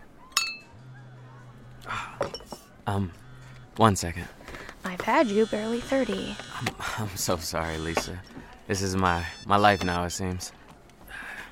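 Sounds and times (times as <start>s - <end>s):
bright glass clink: 0.3s - 0.7s
speech: 2.2s - 3.2s, 3.8s - 10.6s.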